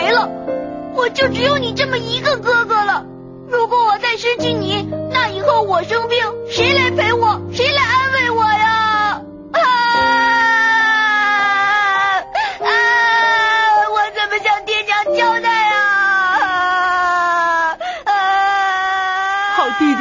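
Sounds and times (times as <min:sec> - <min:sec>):
speech: 0:01.1 - 0:07.9
person crying and sobbing: 0:06.6 - 0:20.0.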